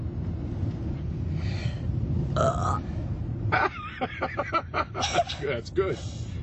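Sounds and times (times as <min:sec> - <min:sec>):
steady low rumble: 0:00.0 - 0:06.4
person burping after drinking a Coke: 0:02.4 - 0:02.8
speech: 0:02.4 - 0:06.3.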